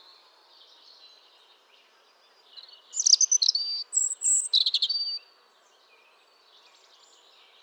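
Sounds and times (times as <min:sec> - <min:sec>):
European robin singing, Erithacus rubecula: 0:02.6 - 0:05.2.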